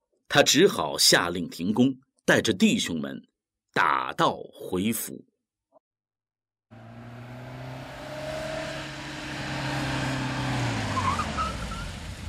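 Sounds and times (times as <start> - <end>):
speech: 0.3 - 5.3
truck engine droning while driving: 6.7 - 12.2.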